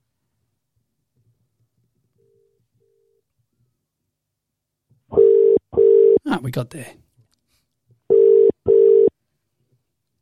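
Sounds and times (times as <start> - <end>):
electronic phone ringback tone: 5.2 - 6.2, 8.1 - 9.1
speech: 6.4 - 7.0.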